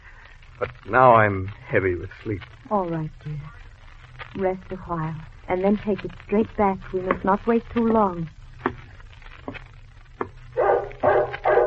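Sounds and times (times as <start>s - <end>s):
speech: 0.6s - 3.7s, 4.4s - 8.4s
dog barking: 10.6s - 11.6s.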